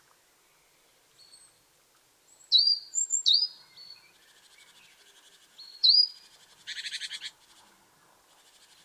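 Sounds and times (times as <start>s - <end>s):
great tit Parus major sharp high calls: 2.5s - 4.0s, 5.6s - 7.4s.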